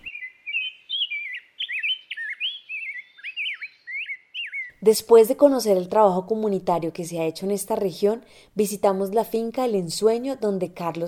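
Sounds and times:
rose-breasted grosbeak Pheucticus ludovicianus singing: 0.0 - 5.2
speech: 4.8 - 11.0.

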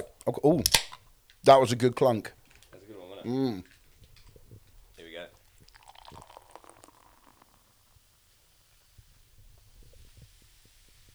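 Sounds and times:
speech: 0.3 - 0.8, 1.4 - 2.4, 3.2 - 3.7
beer glugging as it is poured: 3.3 - 8.2.

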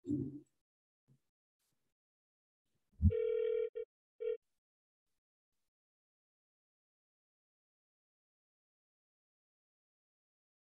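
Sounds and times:
electronic phone ring with sustained tone and short beeps: 3.0 - 4.4.

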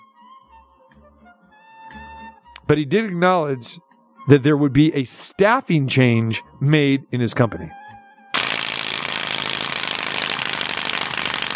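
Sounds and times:
speech: 2.7 - 7.8
bicycle wheel spinning and clicking: 8.4 - 11.5.

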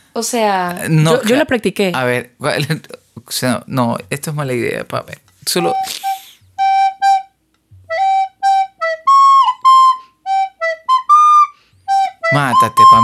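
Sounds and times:
speech: 0.2 - 6.1, 12.3 - 13.0
simple tune played on a flute or whistled: 5.6 - 13.0.

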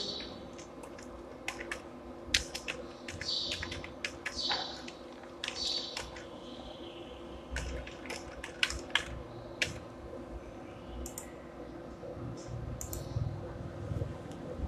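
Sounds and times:
keyboard typing: 0.0 - 6.3, 7.5 - 9.9
low hum: 0.0 - 14.6.

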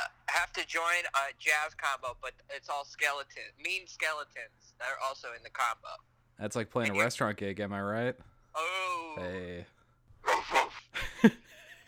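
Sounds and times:
speech: 0.4 - 11.4
person imitating a dog barking: 10.3 - 10.8
laughter: 10.9 - 11.8.

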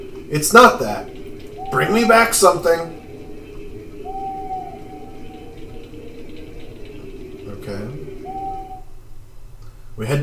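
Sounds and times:
owl hooting: 0.0 - 9.0
low rumbling nighttime background: 0.0 - 10.1
speech: 0.3 - 3.0.

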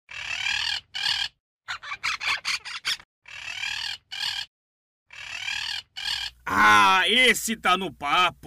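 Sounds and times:
parrot squawking: 0.1 - 4.5, 5.1 - 6.7
speech: 6.5 - 8.4.

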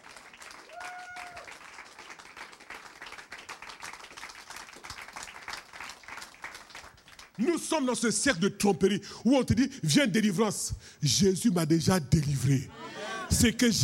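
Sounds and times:
church congregation applauding: 0.0 - 7.5
speech: 7.4 - 13.8.

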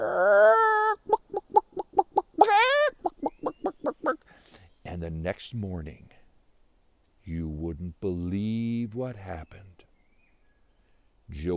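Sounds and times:
person imitating chickens clucking and squawking: 0.0 - 4.2
speech: 5.0 - 6.2, 7.2 - 9.7, 11.3 - 11.5.

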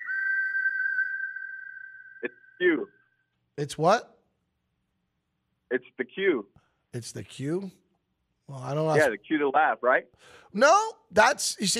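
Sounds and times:
long high-pitched whistle: 0.0 - 2.6
speech: 2.2 - 3.0, 3.6 - 4.1, 5.7 - 7.8, 8.5 - 11.7.

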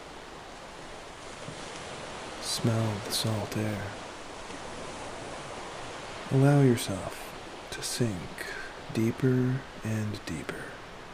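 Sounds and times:
ocean waves crashing on a beach: 0.0 - 11.1
speech: 2.6 - 4.0, 6.3 - 10.8.

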